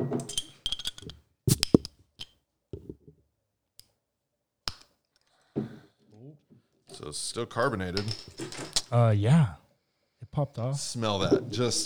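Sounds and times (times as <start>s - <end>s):
glasses of Russian Imperial Stout clinking in a toast: 0.3s - 1.8s, 7.9s - 8.9s
speech: 7.0s - 9.6s, 10.4s - 11.8s.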